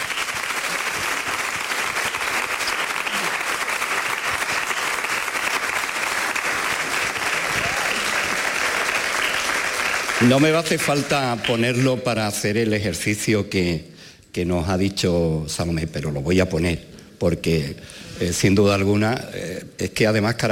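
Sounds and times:
audience applause: 0.0 - 12.1
speech: 10.2 - 20.5.

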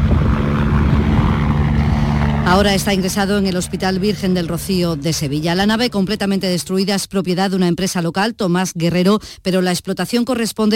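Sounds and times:
helicopter rotor and engine drone during medical evacuation: 0.0 - 7.0
speech: 2.5 - 10.7.

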